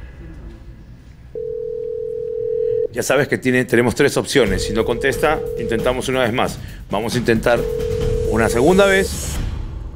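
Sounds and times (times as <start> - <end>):
single-pitch telephone dial tone during a call: 1.4 - 2.9, 4.9 - 5.9, 7.6 - 8.6
speech: 3.0 - 9.4.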